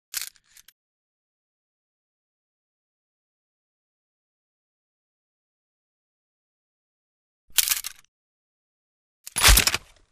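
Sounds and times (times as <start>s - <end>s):
frontier gun cocking: 9.3s - 10.0s.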